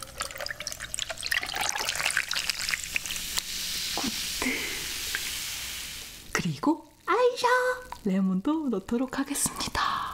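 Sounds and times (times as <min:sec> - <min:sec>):
cola pouring over a large chunk of ice into a glass: 0:00.0 - 0:06.2
speech: 0:06.6 - 0:09.8.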